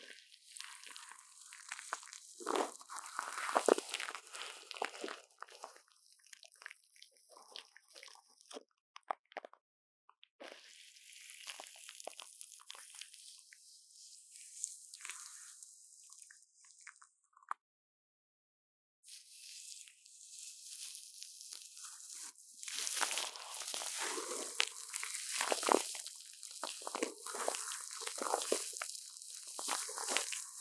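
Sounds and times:
plastic wrap crinkling and crunching: 1.1 - 5.7, 19.3 - 30.5.

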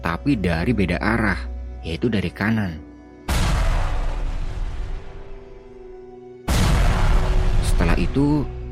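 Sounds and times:
speech: 0.2 - 2.9, 8.0 - 8.6
heavy explosion booms: 3.3 - 5.4, 6.5 - 8.2.

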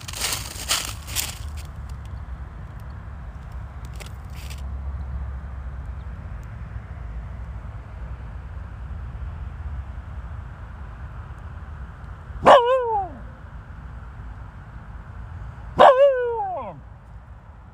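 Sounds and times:
steady low outdoor rumble: 0.0 - 17.7
dog barking toward the opposite bank in Sapporo: 12.4 - 13.2, 15.8 - 16.8.

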